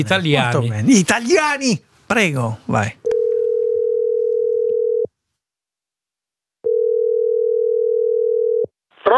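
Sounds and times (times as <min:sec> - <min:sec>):
speech: 0:00.0 - 0:03.0
single-pitch telephone ringing tone of an outgoing survey call: 0:03.0 - 0:05.1, 0:06.7 - 0:08.7.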